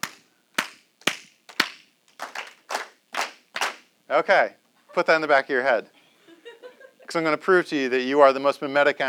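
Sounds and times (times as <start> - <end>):
audience clapping in rhythmic pattern copying the speaker: 0.0 - 3.9
speech: 4.1 - 6.0, 7.1 - 9.0.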